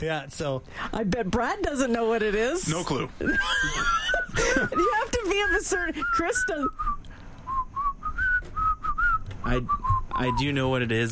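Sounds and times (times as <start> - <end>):
speech: 0.0 - 7.0, 9.5 - 11.1
laughter: 3.2 - 5.9
person whistling a tune: 4.6 - 10.4.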